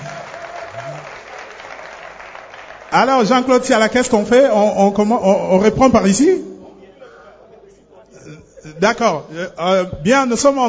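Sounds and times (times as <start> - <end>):
audience applause: 0.0 - 3.6
speech: 3.0 - 6.4, 8.8 - 10.6.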